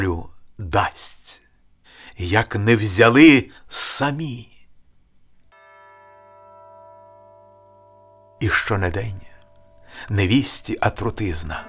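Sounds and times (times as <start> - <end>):
speech: 0.0 - 1.4, 2.2 - 4.5, 8.4 - 9.3, 10.0 - 11.6
church bell tolling in a monastery: 5.5 - 11.6.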